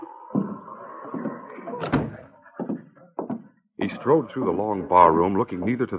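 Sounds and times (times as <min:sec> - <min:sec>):
cafe office door clattering and banging: 0:01.2 - 0:02.8
speech: 0:04.0 - 0:05.9.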